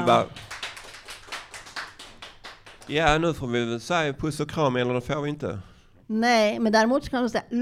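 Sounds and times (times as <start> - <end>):
speech: 0.0 - 0.5, 2.9 - 7.6
small group clapping: 0.0 - 3.5.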